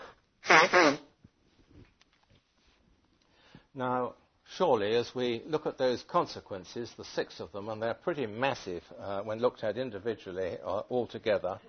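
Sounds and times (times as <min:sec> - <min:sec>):
loud sneeze: 0:00.0 - 0:01.1
speech: 0:00.6 - 0:01.0, 0:03.8 - 0:11.6.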